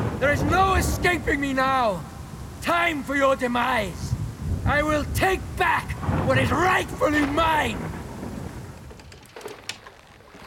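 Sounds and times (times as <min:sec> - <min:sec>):
low thunder rumble: 0:00.0 - 0:02.6, 0:03.3 - 0:09.2
rain in a storm: 0:00.0 - 0:10.4
wind in a storm: 0:00.0 - 0:10.4
speech: 0:00.2 - 0:07.9.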